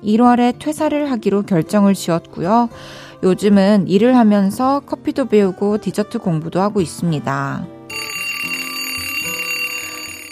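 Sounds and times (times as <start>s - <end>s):
speech: 0.0s - 7.8s
electronic alarm clock ringing: 7.9s - 10.2s.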